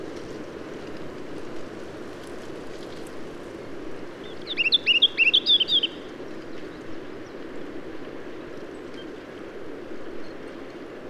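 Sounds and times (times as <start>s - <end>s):
whitethroat singing: 4.2s - 7.4s.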